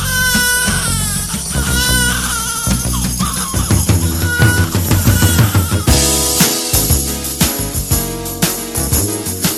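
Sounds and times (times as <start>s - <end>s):
newborn baby crying in a hospital at birth: 0.0s - 5.9s
loud steady music with a thumping bass line and drums: 0.0s - 9.5s.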